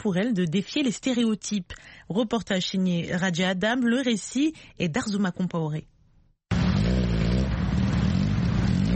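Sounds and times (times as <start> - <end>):
speech: 0.0 - 5.9
congested street traffic in Nairobi: 6.5 - 8.9
motorcycle engine revving: 6.5 - 8.9.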